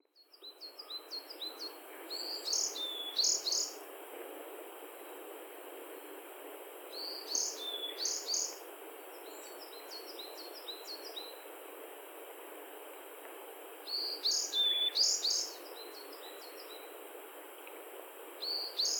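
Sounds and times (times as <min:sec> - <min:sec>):
bird song: 0:00.0 - 0:03.8, 0:06.9 - 0:11.4, 0:13.9 - 0:16.9, 0:18.4 - 0:18.9
steady hiss: 0:01.6 - 0:18.9.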